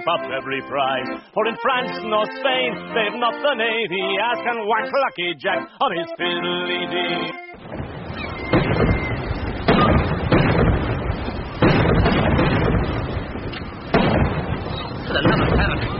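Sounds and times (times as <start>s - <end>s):
speech: 0.0s - 7.7s
cannon gun salute from a naval ship for an admiral's flag: 7.6s - 15.9s.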